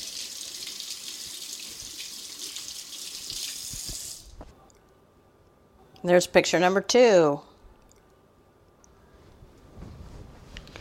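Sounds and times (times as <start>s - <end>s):
running tap water rinsing fingers sticky with cookie dough: 0.0s - 4.3s
speech: 6.0s - 7.5s.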